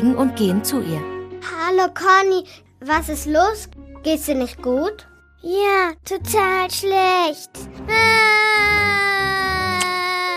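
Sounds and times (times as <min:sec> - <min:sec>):
speech: 0:00.0 - 0:09.0
baby crying in a long wail: 0:07.9 - 0:10.3.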